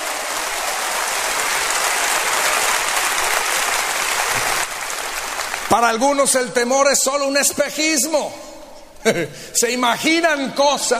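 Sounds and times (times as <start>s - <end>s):
large audience applauding at a church meeting: 0.0s - 6.5s
speech: 5.7s - 10.9s.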